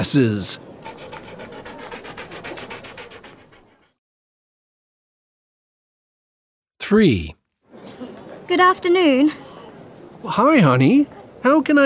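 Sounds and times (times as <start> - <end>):
speech: 0.0 - 0.7, 6.9 - 7.4, 8.5 - 9.4, 10.2 - 11.8
dog panting: 0.8 - 4.0.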